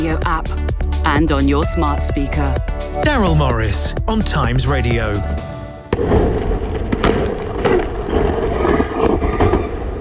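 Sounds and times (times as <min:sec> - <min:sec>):
speech: 0:00.0 - 0:06.6
New Glenn rocket exploding during a ground test: 0:05.9 - 0:09.9.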